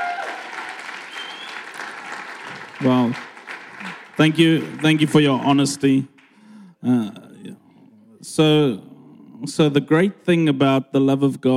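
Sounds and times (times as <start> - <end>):
audience applause: 0.0 - 6.4
faint whistle tone: 1.1 - 1.6
speech: 2.8 - 3.3, 4.2 - 6.1, 6.8 - 7.2, 8.2 - 11.5.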